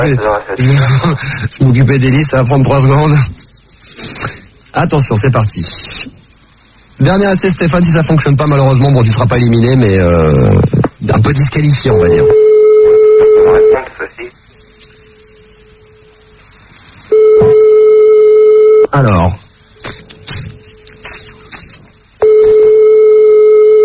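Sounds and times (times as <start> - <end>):
speech: 0.0 - 3.4, 4.0 - 6.2, 7.0 - 12.5
electronic telephone ringback tone of an outgoing call: 12.3 - 13.8, 17.1 - 18.9, 22.2 - 23.8.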